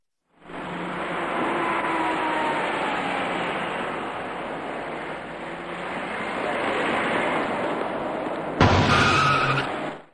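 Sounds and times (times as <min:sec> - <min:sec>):
dense traffic roar on a city ring road main carriageway: 0:00.2 - 0:10.1
vehicles swishing past a roadside bus stop: 0:00.4 - 0:10.1
bus brakes squealing as a bus pulls into the stop: 0:08.9 - 0:10.0.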